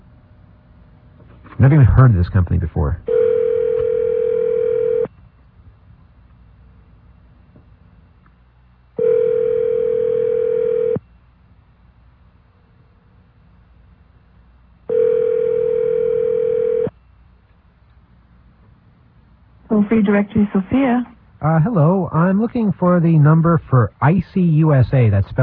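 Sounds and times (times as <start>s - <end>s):
speech: 1.6s - 3.2s, 19.8s - 25.4s
telephone dial tone: 3.1s - 5.1s, 9.0s - 11.0s, 14.9s - 16.9s.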